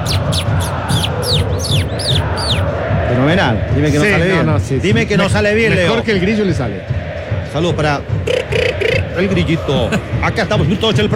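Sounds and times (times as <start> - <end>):
bird call of high sharply descending chirps: 0.0 - 2.7
speech: 3.2 - 7.0, 7.6 - 11.1.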